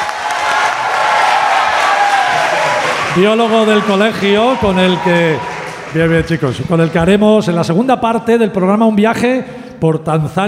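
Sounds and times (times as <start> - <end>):
audience applause: 0.0 - 7.5
speech: 3.2 - 10.4.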